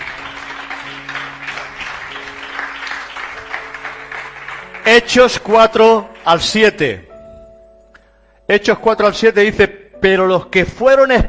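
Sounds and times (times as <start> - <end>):
audience applauding: 0.0 - 6.6
speech: 4.9 - 7.1, 8.5 - 11.2.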